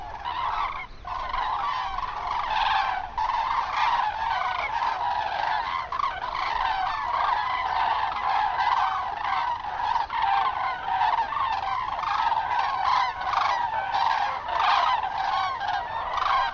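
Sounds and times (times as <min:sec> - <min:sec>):
common cranes Grus grus bugling: 0:00.0 - 0:16.5.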